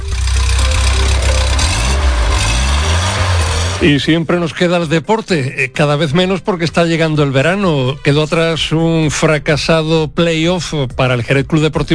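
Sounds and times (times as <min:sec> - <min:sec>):
classic car engine idling: 0:00.0 - 0:04.0
speech: 0:03.8 - 0:11.9.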